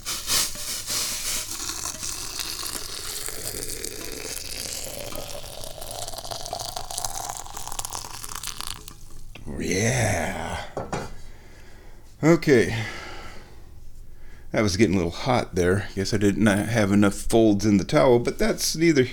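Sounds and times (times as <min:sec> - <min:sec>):
hot boiling water pouring into a teapot: 0:00.4 - 0:09.4
speech: 0:12.2 - 0:12.9, 0:14.6 - 0:19.1.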